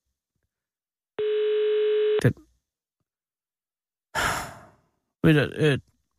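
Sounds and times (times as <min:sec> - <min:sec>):
unanswered telephone ringing tone: 0:01.2 - 0:02.2
speech: 0:02.2 - 0:02.4, 0:05.2 - 0:05.9.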